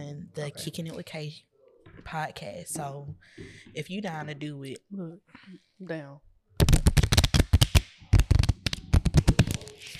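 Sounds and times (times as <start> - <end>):
speech: 0.4 - 6.7
deck of cards being shuffled: 6.6 - 9.9.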